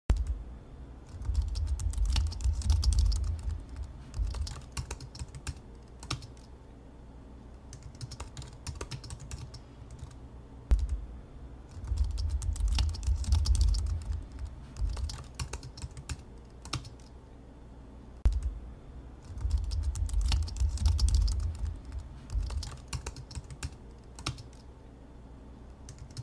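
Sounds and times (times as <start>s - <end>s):
laptop keyboard typing: 1.1s - 6.5s, 7.7s - 11.0s, 11.7s - 17.1s, 18.3s - 18.5s, 19.2s - 24.6s, 25.8s - 26.2s.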